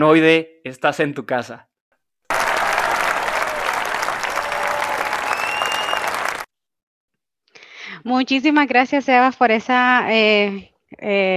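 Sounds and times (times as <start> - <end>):
speech: 0.0 - 1.7, 8.0 - 11.3
crowd applause: 2.3 - 6.5.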